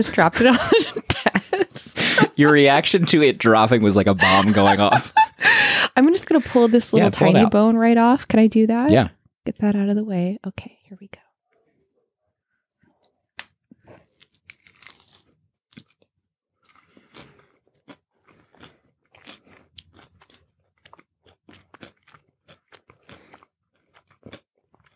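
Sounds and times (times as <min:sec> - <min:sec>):
speech: 0:00.0 - 0:01.4, 0:02.4 - 0:11.2
laughter: 0:00.0 - 0:07.5
loud bites and smacking at the microphone: 0:13.4 - 0:24.9
crisp crunching of fried chicken at the microphone: 0:13.8 - 0:24.9.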